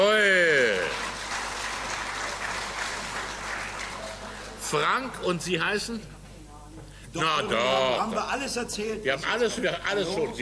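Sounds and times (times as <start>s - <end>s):
crowd applauding: 0.0s - 4.9s
speech: 4.7s - 6.2s, 7.1s - 10.4s.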